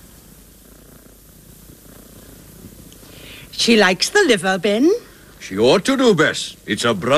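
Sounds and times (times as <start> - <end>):
cat purring: 0.0 - 3.2
speech: 3.5 - 7.1.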